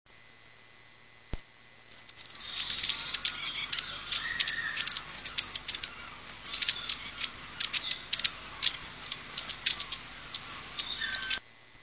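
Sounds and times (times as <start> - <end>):
long-tailed tit calling: 2.2 - 11.4.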